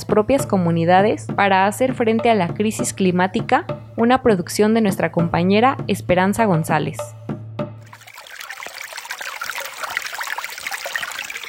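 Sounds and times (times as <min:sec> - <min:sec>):
speech: 0:00.0 - 0:07.2
water trickling and babbling: 0:07.8 - 0:11.4.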